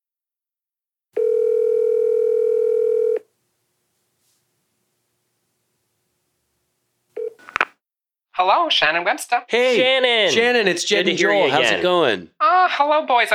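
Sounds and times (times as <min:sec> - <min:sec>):
steady loud telephone dial tone: 0:01.2 - 0:03.2, 0:07.2 - 0:07.7
telephone dialing tones and clicks: 0:07.2 - 0:07.7
speech: 0:08.4 - 0:13.3.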